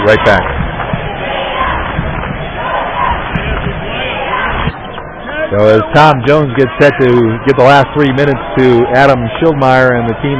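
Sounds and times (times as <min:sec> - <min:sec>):
crowd of parents and fans cheering at a basketball game: 0:00.0 - 0:10.3
speech: 0:00.1 - 0:00.5, 0:05.5 - 0:10.3
basketball bounces and thuds: 0:00.4 - 0:02.5, 0:03.1 - 0:05.1.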